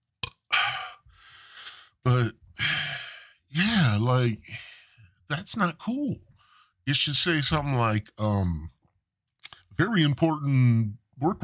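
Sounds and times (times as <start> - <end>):
raspy burp: 0.2 - 0.7
softer breathy exhale: 0.5 - 2.0, 2.6 - 3.4
speech: 4.0 - 4.7, 5.3 - 6.3, 6.9 - 8.8, 9.8 - 11.4.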